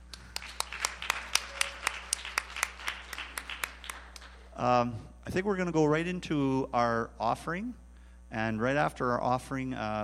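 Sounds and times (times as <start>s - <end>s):
church audience clapping rhythmically: 0.0s - 4.6s
faint hum: 0.0s - 10.0s
speech: 4.6s - 10.0s.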